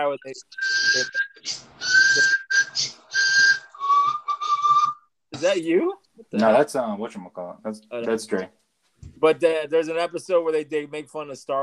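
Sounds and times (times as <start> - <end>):
speech: 0.0 - 2.4, 5.4 - 8.6, 9.2 - 11.6
person whistling: 0.5 - 5.1.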